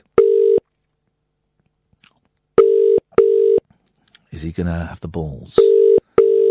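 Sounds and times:
outgoing telephone call ringing tone: 0:00.2 - 0:00.6, 0:02.6 - 0:03.6, 0:05.6 - 0:06.4
speech: 0:04.4 - 0:05.8.

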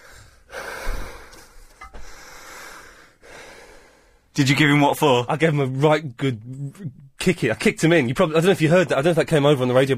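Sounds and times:
heavy out-of-breath breathing with gasping and snorting exhalations: 0:00.0 - 0:04.3
speech: 0:04.4 - 0:09.9.

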